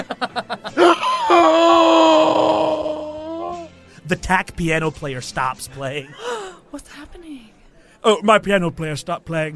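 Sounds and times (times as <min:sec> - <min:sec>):
laughter: 0:00.0 - 0:01.5
voice performing a dramatic gasp and drawn-out cry: 0:00.8 - 0:03.6, 0:06.2 - 0:06.7
speech: 0:04.3 - 0:07.2, 0:08.0 - 0:09.5.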